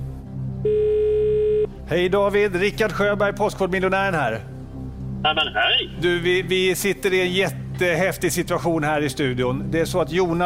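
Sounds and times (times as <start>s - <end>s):
ringback tone of an outgoing phone call from a studio: 0.6s - 1.7s
speech: 1.9s - 4.5s, 5.2s - 10.4s.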